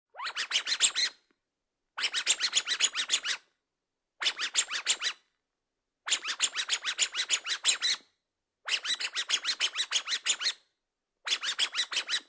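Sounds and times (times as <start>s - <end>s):
dog toy squeaks: 0.2s - 1.2s, 2.0s - 3.4s, 4.2s - 5.2s, 6.1s - 8.0s, 8.7s - 10.6s, 11.3s - 12.2s.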